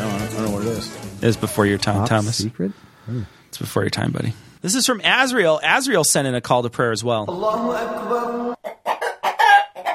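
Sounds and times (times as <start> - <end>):
speech: 0.6 - 8.8
chickens clucking: 8.6 - 9.9.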